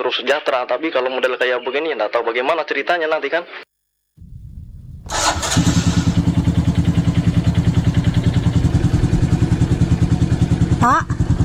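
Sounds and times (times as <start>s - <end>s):
speech: 0.0s - 3.6s
motorcycle engine idling while warming up: 4.2s - 11.4s.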